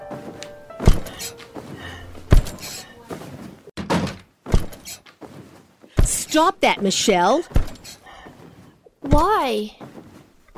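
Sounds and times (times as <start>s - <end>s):
faint rustling: 0.0s - 3.7s, 4.6s - 6.4s, 7.4s - 9.0s, 9.7s - 10.5s
door shutting with a heavy close thunk: 0.8s - 1.4s, 3.8s - 5.0s
speech: 6.3s - 7.6s, 9.1s - 9.8s.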